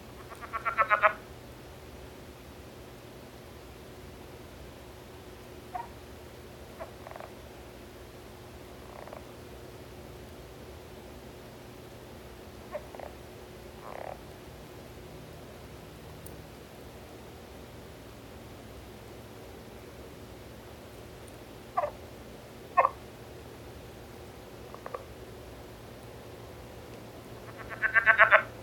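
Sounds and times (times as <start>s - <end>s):
Rana sphenocephala: 0.1s - 1.3s, 5.7s - 6.0s, 6.7s - 7.4s, 8.8s - 9.3s, 12.6s - 13.2s, 13.8s - 14.2s, 21.7s - 22.0s, 22.7s - 23.0s, 24.7s - 25.1s, 27.4s - 28.5s.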